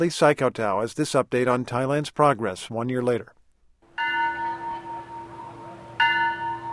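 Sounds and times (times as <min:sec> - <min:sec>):
speech: 0:00.0 - 0:03.4
Buddhist temple bell tolling: 0:04.0 - 0:06.7.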